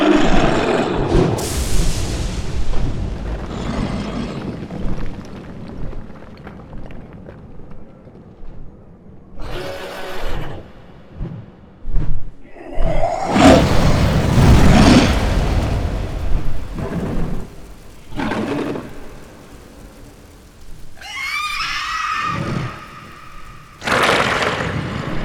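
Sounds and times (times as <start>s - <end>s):
fantasy monster dragon air attack: 0.1s - 5.1s, 13.0s - 25.1s.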